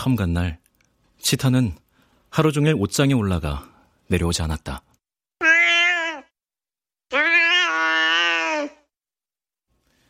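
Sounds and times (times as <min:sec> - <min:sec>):
speech: 0:00.0 - 0:00.6, 0:01.2 - 0:04.9
cat grumbling cry: 0:05.4 - 0:06.3, 0:07.1 - 0:08.9.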